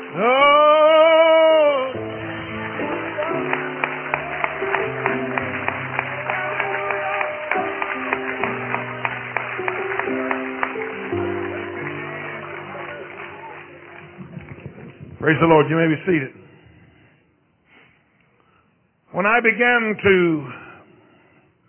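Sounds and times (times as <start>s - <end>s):
audience clapping hands in a steady rhythm: 0.0s - 15.9s
sustained keyboard or organ music: 0.0s - 16.3s
speech: 0.1s - 0.5s, 15.3s - 16.4s, 19.3s - 20.6s.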